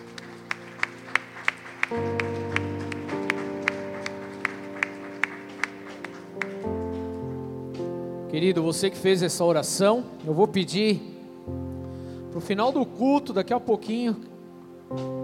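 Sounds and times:
crowd clapping in a steady rhythm: 0.0 - 7.1
sustained keyboard chords: 0.0 - 15.2
speech: 1.9 - 2.2, 8.4 - 11.6, 12.4 - 14.3, 14.9 - 15.2.

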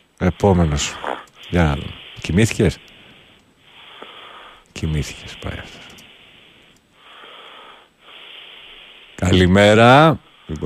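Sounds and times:
speech: 0.2 - 2.9, 4.8 - 6.0, 9.2 - 10.6
heavy rasping breathing through a phone line: 0.9 - 9.3.

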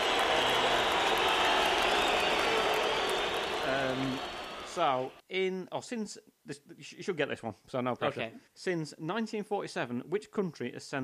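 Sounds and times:
crowd booing and jeering: 0.0 - 5.0
speech: 3.7 - 11.0.

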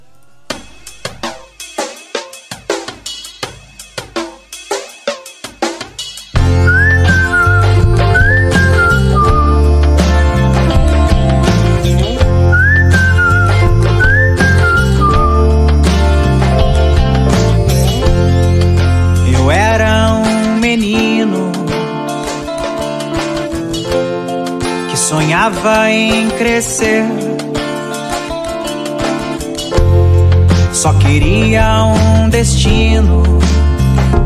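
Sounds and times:
plucked rhythmic intro: 6.3 - 34.2
full band playing: 6.4 - 34.2
human whistling a song melody: 6.5 - 10.3, 12.4 - 16.4
speech: 26.3 - 27.3.

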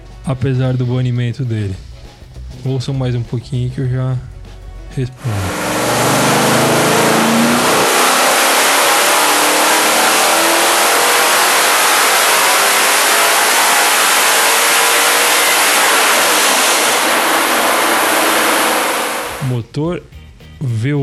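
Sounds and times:
speech: 0.3 - 1.9, 2.6 - 4.3, 4.9 - 5.6, 19.8 - 21.0
Ford FE 427 V8 engine revving: 5.2 - 19.6.

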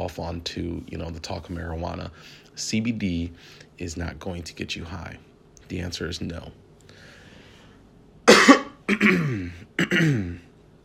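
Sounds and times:
speech: 0.1 - 6.6, 8.9 - 10.5
person coughing: 8.2 - 10.5
throat clearing: 8.3 - 10.5.

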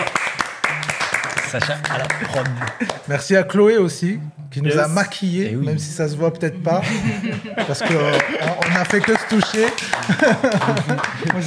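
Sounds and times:
scattered clapping: 0.0 - 3.1, 7.3 - 11.4
laughter: 1.3 - 3.1, 6.7 - 11.4
speech: 1.5 - 11.4.

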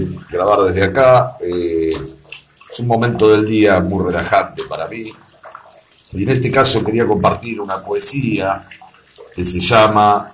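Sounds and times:
speech: 0.0 - 1.8, 2.7 - 5.2, 6.1 - 8.8, 9.4 - 10.3
person speaking calmly up: 0.0 - 10.3
water sloshing in a bathtub: 0.0 - 10.3.

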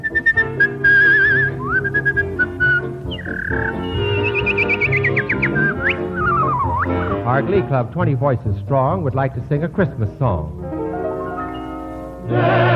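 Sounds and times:
person whistling an imitation of birdsong: 0.0 - 7.3
speech: 7.4 - 10.7, 12.3 - 12.7.

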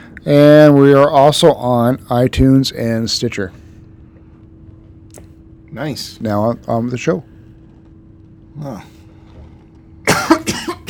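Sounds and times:
speech: 0.2 - 3.6, 5.8 - 7.3, 8.6 - 8.9
harsh cough with raspy hacks: 10.1 - 10.8.

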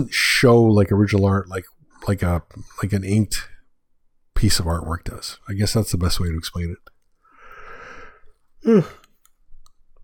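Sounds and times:
speech: 0.0 - 3.5, 4.4 - 6.9, 8.6 - 9.0
person yawning with a breathy intake and voiced groan: 8.6 - 9.0.

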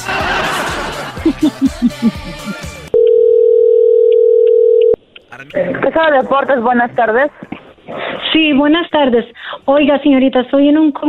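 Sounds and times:
rhythmic giggling and chattering: 0.6 - 2.9
electronic telephone dial tone: 3.0 - 5.0
speech: 5.6 - 11.0.

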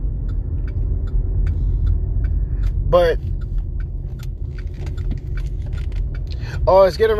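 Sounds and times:
car engine rumble: 0.0 - 7.1
soft ticking: 0.0 - 7.1
speech: 2.9 - 3.3, 6.6 - 7.1.

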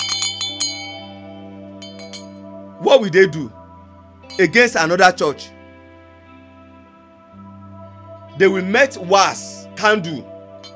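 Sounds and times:
hand bell being shaken: 0.0 - 2.5
speech: 2.8 - 3.6, 4.4 - 5.6, 8.4 - 10.3.

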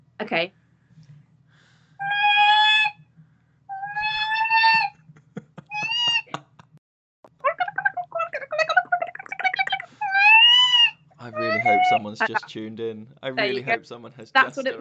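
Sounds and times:
speech: 0.2 - 0.6, 12.0 - 14.7
person imitating a bird call with their voice: 2.0 - 3.0, 3.7 - 4.9, 5.7 - 6.5, 7.5 - 12.5
laughter: 5.3 - 6.7, 11.2 - 14.7.

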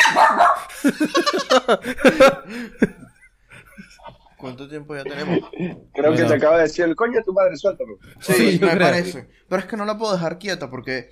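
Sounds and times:
dog barking: 0.0 - 0.7
speech: 0.2 - 3.0, 4.4 - 11.1
laughter: 0.6 - 6.3.

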